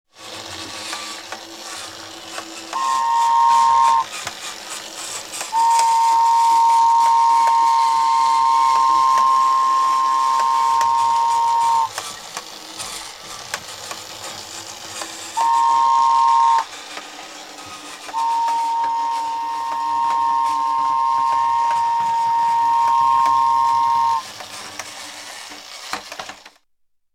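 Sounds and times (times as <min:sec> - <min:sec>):
electric train: 0:00.1 - 0:26.6.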